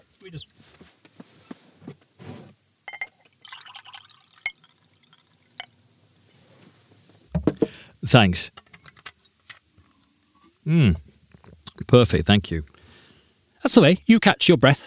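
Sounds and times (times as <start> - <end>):
speech: 0.2 - 0.8, 8.1 - 8.6, 10.7 - 11.1, 11.9 - 12.7, 13.6 - 14.8
water poured into a glass: 3.2 - 5.7.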